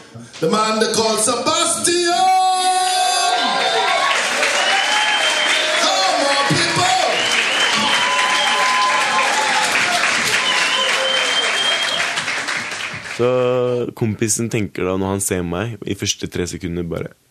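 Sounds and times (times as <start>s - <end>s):
speech: 0.1s - 2.3s, 13.2s - 17.2s
audience cheers and whoops: 2.2s - 12.2s
large audience applause for performer entering stage: 2.4s - 13.4s.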